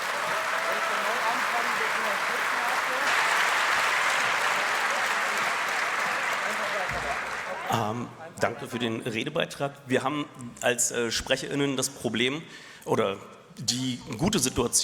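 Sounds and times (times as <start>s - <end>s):
dense applause from a sizable audience: 0.0s - 8.0s
speech: 7.8s - 14.8s.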